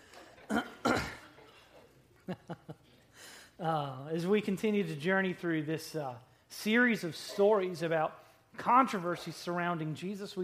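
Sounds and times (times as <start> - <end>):
person clearing throat after singing: 0.4 - 1.8
speech: 2.3 - 2.9, 3.6 - 10.4.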